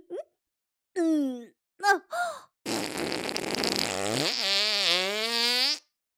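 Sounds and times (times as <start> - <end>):
speech: 1.0 - 2.4
long loud buzzing fart: 2.6 - 6.0.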